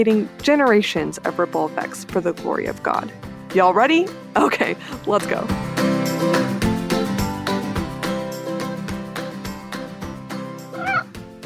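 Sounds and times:
speech: 0:00.0 - 0:05.7
rhythmic music: 0:00.0 - 0:11.4
cat meowing: 0:10.7 - 0:11.1.

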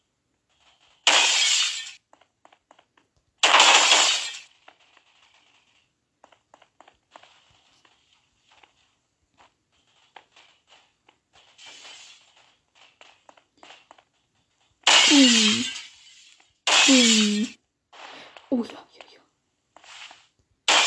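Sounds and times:
window glass shattering from gunfire in a video game: 0:01.0 - 0:02.0, 0:03.4 - 0:04.5, 0:14.8 - 0:17.5, 0:20.7 - 0:20.8
soft whispered talk: 0:18.2 - 0:19.3.

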